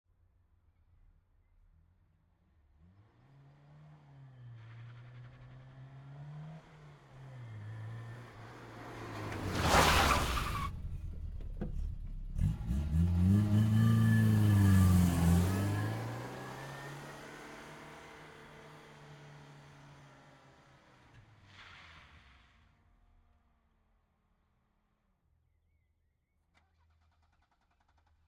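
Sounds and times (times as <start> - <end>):
1976 Saab 99 GL approaching fast and stopping: 2.7 - 22.9.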